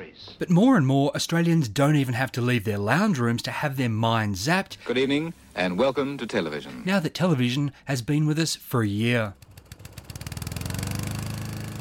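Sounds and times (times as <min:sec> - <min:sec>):
speech: 0:00.2 - 0:09.4
brand-new lawn mower with an automatic accelerator puttering: 0:09.3 - 0:11.7.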